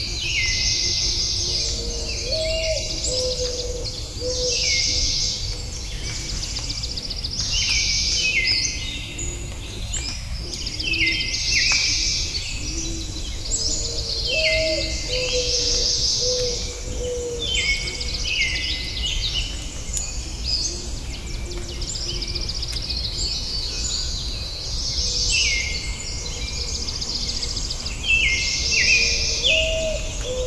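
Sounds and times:
dawn birdsong chirping and trilling in California: 0.2 - 30.4.

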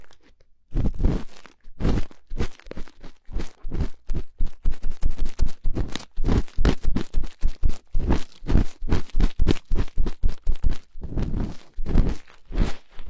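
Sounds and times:
cotton swab cleaning an ear: 0.8 - 13.0.

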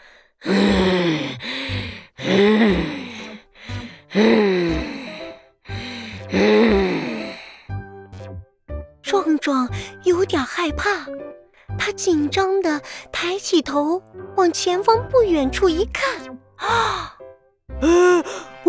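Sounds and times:
monster breathing heavily with raspy groaning rumble: 0.0 - 7.7
speech: 4.2 - 4.5, 9.4 - 17.1, 17.8 - 18.6.

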